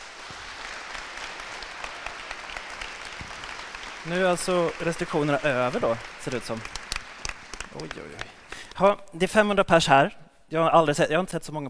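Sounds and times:
audience of about 500 people clapping to welcome guests at a student evening: 0.0s - 8.8s
speech: 4.0s - 6.8s, 7.8s - 11.6s.

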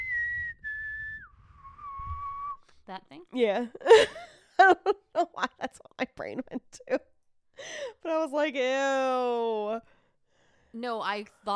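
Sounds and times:
short low-high-low whistled tune: 0.0s - 2.8s
speech: 2.9s - 9.9s, 10.8s - 11.5s.

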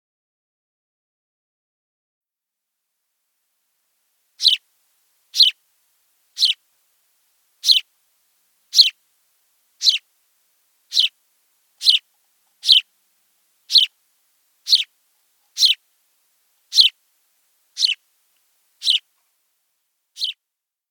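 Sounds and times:
house sparrow chirping: 4.4s - 4.6s, 5.3s - 5.6s, 6.3s - 6.6s, 7.6s - 7.9s, 8.6s - 9.0s, 9.7s - 10.1s, 10.8s - 15.9s, 16.6s - 17.0s, 17.6s - 18.0s, 18.7s - 19.1s, 20.2s - 20.4s.

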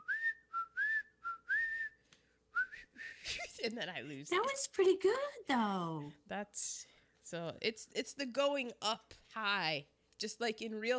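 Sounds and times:
person whistling a short melodic tune: 0.0s - 3.3s
speech: 3.0s - 10.9s.

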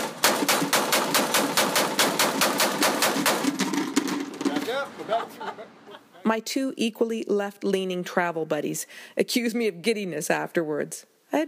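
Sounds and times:
authentic Civil War Gatling gun firing: 0.0s - 4.7s
laughter: 4.5s - 6.3s
speech: 6.3s - 11.4s.

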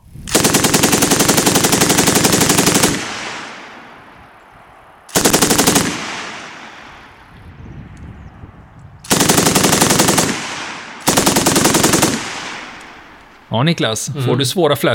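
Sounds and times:
rolling outdoor echo of gunfire: 0.0s - 14.1s
KSB 58 machine gun firing bursts: 0.3s - 3.6s, 5.1s - 6.8s, 9.1s - 13.2s
speech: 13.5s - 14.9s.

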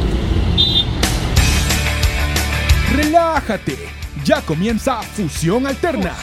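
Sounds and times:
busy city traffic in Lima roaring: 0.0s - 5.1s
passing vehicles: 0.0s - 6.2s
brief high horn-like tone: 0.6s - 1.0s
speech: 3.4s - 6.2s.

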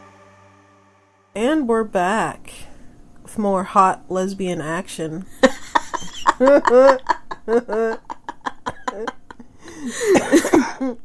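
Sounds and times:
speech: 1.4s - 2.6s, 3.4s - 5.5s, 6.4s - 8.1s, 8.9s - 9.2s, 9.8s - 11.0s
person coughing: 9.8s - 11.0s.

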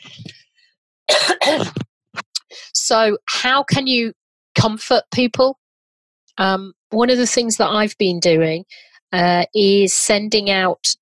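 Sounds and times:
cough with throat-clearing rasp: 1.1s - 1.8s
speech: 1.5s - 1.8s, 2.9s - 5.6s, 6.4s - 11.0s.

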